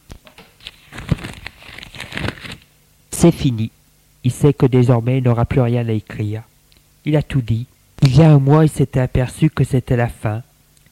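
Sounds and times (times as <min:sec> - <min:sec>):
sheet of paper laid down on other sheets rustling: 0:00.3 - 0:02.7
speech: 0:03.2 - 0:10.5.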